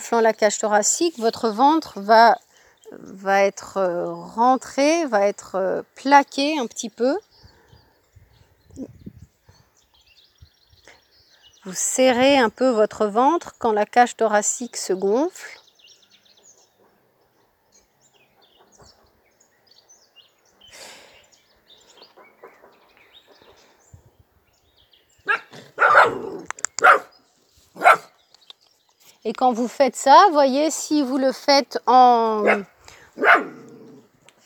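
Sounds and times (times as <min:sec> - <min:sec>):
speech: 0:00.1 - 0:07.3, 0:08.8 - 0:09.0, 0:11.6 - 0:15.6, 0:29.2 - 0:33.6
small dog barking: 0:25.2 - 0:27.1, 0:27.8 - 0:28.2, 0:32.4 - 0:34.0.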